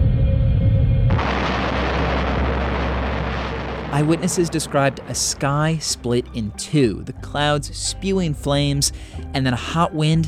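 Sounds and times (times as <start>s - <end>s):
low heavy rumble: 1.0s - 6.6s
huge explosion with sustained roaring blast: 1.1s - 6.6s
speech: 3.9s - 10.2s.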